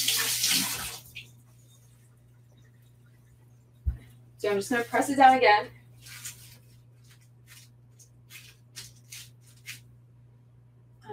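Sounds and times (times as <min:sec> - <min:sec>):
tap water running as hands sticky with sushi rice are rinsed: 0:00.0 - 0:01.5
speech: 0:04.4 - 0:05.8.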